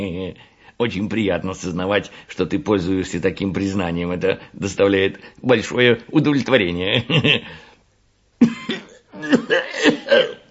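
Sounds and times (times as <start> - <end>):
speech: 0.0 - 7.7, 8.4 - 10.4
person imitating an angry cough for a firework rocket character: 8.4 - 10.4.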